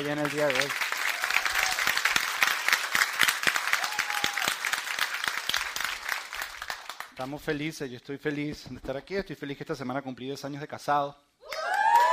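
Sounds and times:
speech: 0:00.0 - 0:00.9, 0:07.2 - 0:11.3
crowd applause: 0:00.0 - 0:07.2
cheer or whistle: 0:11.5 - 0:12.1.

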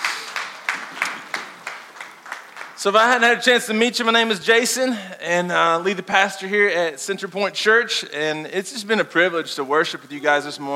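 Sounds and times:
church audience applauding worship musicians: 0:00.0 - 0:03.2
even rhythmic clapping: 0:00.0 - 0:03.4
speech: 0:02.8 - 0:10.7.

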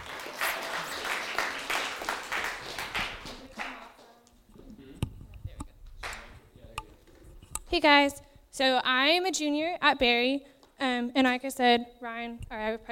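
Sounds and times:
audience applause: 0:00.0 - 0:04.1
speech: 0:07.8 - 0:12.9.

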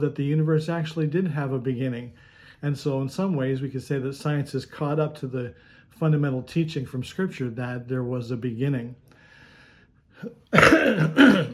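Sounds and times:
speech: 0:00.0 - 0:09.0, 0:10.2 - 0:11.5
man clearing his throat: 0:10.2 - 0:11.5
man coughing: 0:10.2 - 0:11.5.

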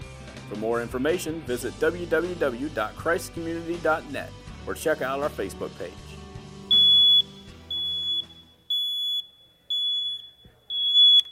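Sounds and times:
speech: 0:00.5 - 0:06.1
smoke alarm beeping: 0:06.7 - 0:11.3.

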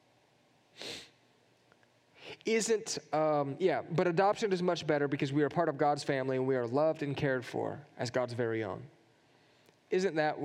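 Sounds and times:
person sneezing: 0:00.8 - 0:01.2
speech: 0:02.4 - 0:09.0, 0:09.9 - 0:10.4.

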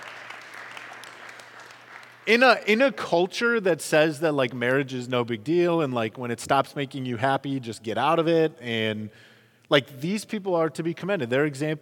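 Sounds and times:
crowd applauding for couples married 50 years: 0:00.0 - 0:02.4
speech: 0:02.3 - 0:11.7.

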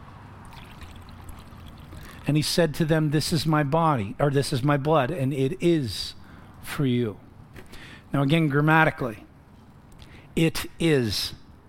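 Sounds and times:
low hum: 0:00.0 - 0:11.6
juice pouring into a cup: 0:00.4 - 0:02.4
speech: 0:02.2 - 0:07.2, 0:08.1 - 0:09.3, 0:10.4 - 0:11.4.

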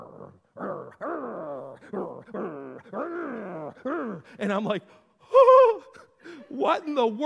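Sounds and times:
person imitating a coyote with yips and howls: 0:00.0 - 0:04.4
speech: 0:02.2 - 0:05.5, 0:06.6 - 0:07.2.

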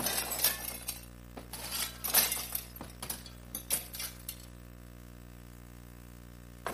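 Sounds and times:
mirror glass shards clinking and tinkling: 0:00.0 - 0:04.6
mirror glass smashing: 0:00.0 - 0:04.6.

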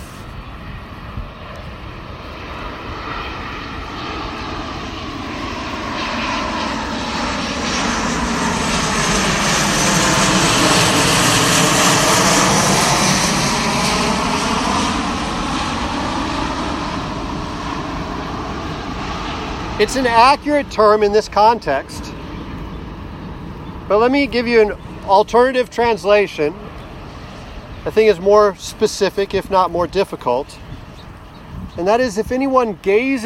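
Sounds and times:
airplane engine roaring overhead: 0:00.0 - 0:33.2
speech: 0:19.8 - 0:22.1, 0:23.9 - 0:26.6, 0:27.8 - 0:30.6, 0:31.8 - 0:33.2.

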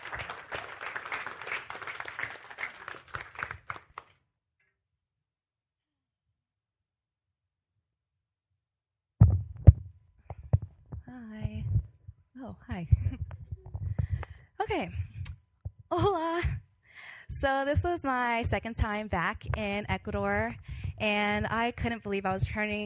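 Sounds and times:
audience clapping: 0:00.0 - 0:04.2
low microphone handling thumps: 0:09.2 - 0:16.6, 0:17.3 - 0:21.7
speech: 0:14.7 - 0:15.0, 0:17.4 - 0:22.8.

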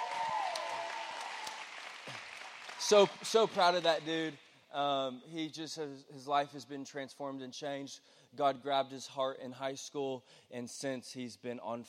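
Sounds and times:
audience clapping hands: 0:00.0 - 0:04.4
speech: 0:02.8 - 0:11.8.

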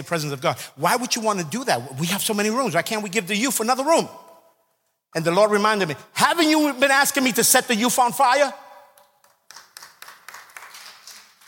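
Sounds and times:
speech: 0:00.0 - 0:04.3, 0:05.1 - 0:08.6
crowd clapping in a steady rhythmic beat: 0:08.8 - 0:11.4.

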